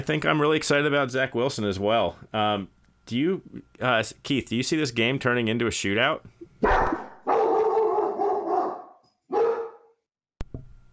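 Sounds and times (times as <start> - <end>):
speech: 0.0 - 7.0
dog barking loudly: 6.6 - 10.0.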